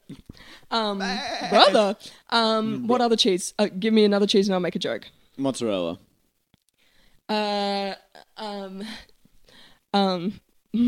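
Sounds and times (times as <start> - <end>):
speech: 0.1 - 6.1, 7.3 - 9.1, 9.9 - 10.8
person imitating a goat bleat: 0.9 - 2.0.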